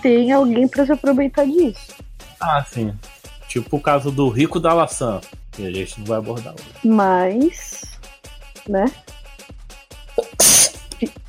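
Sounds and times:
speech: 0:00.0 - 0:07.9, 0:08.6 - 0:09.2
loud sneeze: 0:10.2 - 0:11.2.

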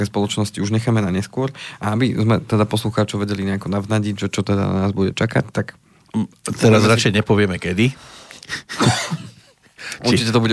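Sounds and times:
speech: 0:00.0 - 0:09.3, 0:09.9 - 0:10.5
laughter: 0:08.5 - 0:09.6
rough throaty cough: 0:08.7 - 0:09.4.

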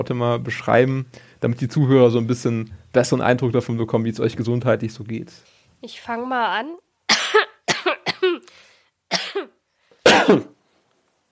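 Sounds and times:
speech: 0:00.0 - 0:07.5, 0:10.3 - 0:10.5
loud coughing: 0:07.1 - 0:10.6
throat clearing: 0:09.1 - 0:10.6.

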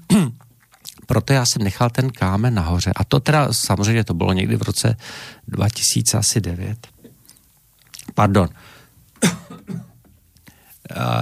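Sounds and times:
person coughing loudly: 0:00.0 - 0:00.4, 0:09.2 - 0:10.0
throat clearing: 0:00.0 - 0:00.5, 0:09.2 - 0:10.0
speech: 0:00.1 - 0:00.4, 0:01.1 - 0:07.0, 0:08.2 - 0:09.8, 0:10.9 - 0:11.2.

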